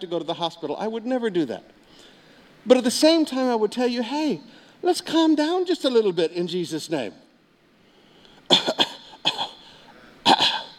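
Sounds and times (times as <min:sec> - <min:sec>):
speech: 0:00.0 - 0:01.8, 0:02.6 - 0:07.2
person giving short dry coughs: 0:08.5 - 0:10.7.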